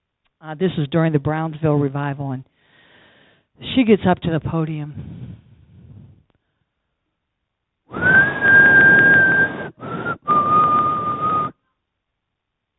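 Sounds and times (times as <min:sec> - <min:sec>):
speech: 0:00.4 - 0:02.5, 0:03.6 - 0:05.2
person whistling a tune in long held notes: 0:07.9 - 0:11.6.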